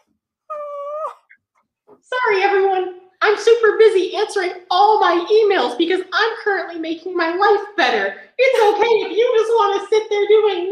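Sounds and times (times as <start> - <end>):
puppy whimpering with a high-pitched whine: 0.0 - 1.4
speech: 3.4 - 10.6.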